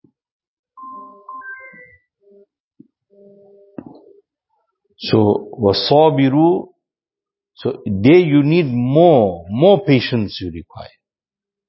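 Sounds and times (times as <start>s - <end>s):
mobile phone ringtone: 0.8s - 2.0s
speech: 5.0s - 6.7s, 7.6s - 11.0s.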